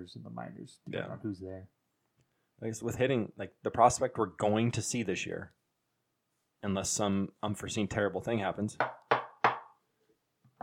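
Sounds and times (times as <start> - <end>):
speech: 0.0 - 1.8, 2.6 - 5.6, 6.6 - 9.0
sharp knocks on wood: 8.8 - 9.7.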